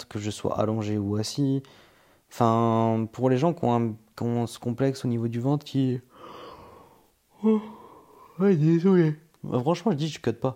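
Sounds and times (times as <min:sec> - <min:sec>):
speech: 0:00.0 - 0:06.1, 0:07.4 - 0:07.8, 0:08.4 - 0:10.5
person yawning with a voiced groan: 0:06.2 - 0:08.4.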